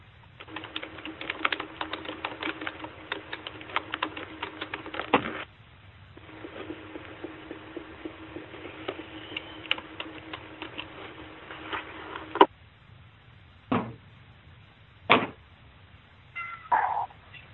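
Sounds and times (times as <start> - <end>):
low hum: 0.0 - 17.5
feral cat meowing outdoors: 16.4 - 17.1.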